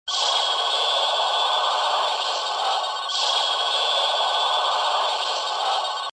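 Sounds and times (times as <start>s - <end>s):
alarm beeping: 0.1s - 6.1s.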